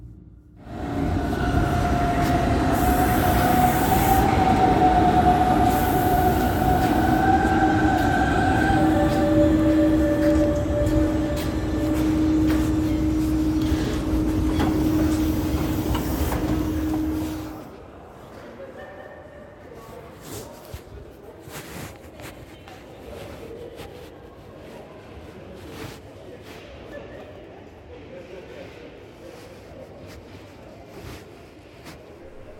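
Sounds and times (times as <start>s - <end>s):
S-Bahn commuter train rolling with continuous rumble: 0.6s - 18.2s, 32.1s - 32.5s.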